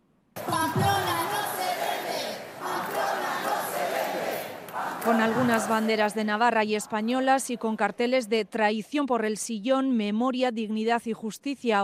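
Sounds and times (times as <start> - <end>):
large protest crowd chanting slogans in unison: 0.4 - 8.0
speech: 5.1 - 11.8.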